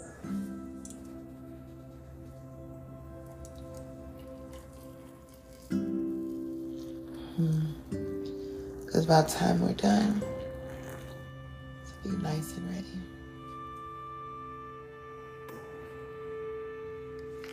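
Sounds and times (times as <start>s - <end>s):
meditation tea pouring into a cup: 0.1s - 14.0s
speech: 9.0s - 10.3s.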